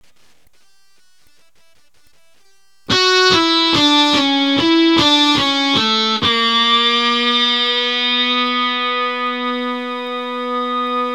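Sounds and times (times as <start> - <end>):
electric guitar: 2.9 - 11.1.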